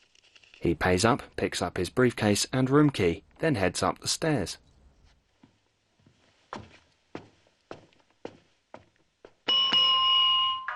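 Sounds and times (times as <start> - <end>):
speech: 0.6 - 4.6
footsteps on a hard floor: 5.4 - 9.9
hotel desk bell ding: 9.5 - 10.7.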